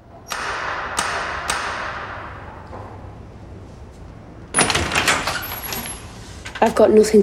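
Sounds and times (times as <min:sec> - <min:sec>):
door rattling as it is pulled open and pushed back: 0:04.5 - 0:06.9
speech: 0:06.6 - 0:07.2.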